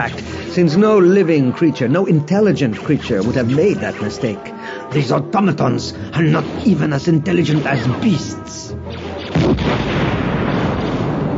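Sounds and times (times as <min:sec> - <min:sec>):
speech: 0:00.0 - 0:08.8, 0:09.5 - 0:10.2
explosion blast in a night battle scene: 0:09.2 - 0:11.3.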